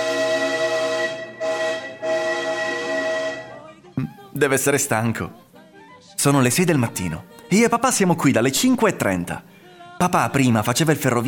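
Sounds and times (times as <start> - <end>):
Naples–Milan train horn blasts: 0.0 - 3.8
speech: 4.4 - 5.5, 6.2 - 11.2.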